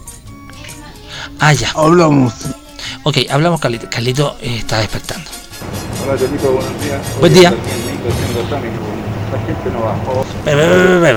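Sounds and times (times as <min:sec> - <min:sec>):
speech: 0:01.2 - 0:11.1
steady street traffic rumble with low engine hum: 0:05.3 - 0:11.1
louder droning vehicle sound: 0:05.5 - 0:11.1.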